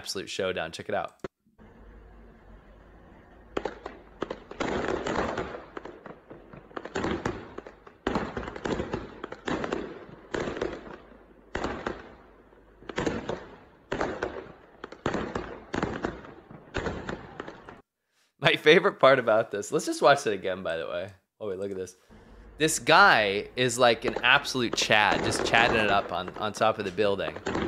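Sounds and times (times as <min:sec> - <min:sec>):
speech: 0:00.0 - 0:01.3, 0:18.6 - 0:27.6
low engine-like rumble: 0:01.6 - 0:04.2, 0:22.1 - 0:24.8
fireworks launched at a demolition excavator: 0:02.7 - 0:17.8, 0:22.1 - 0:27.6.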